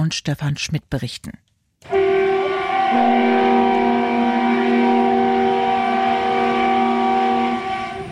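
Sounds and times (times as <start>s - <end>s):
speech: 0.0s - 2.0s
SVT Görlitz diesel express railcar multi-tone arrival horn: 1.8s - 8.1s.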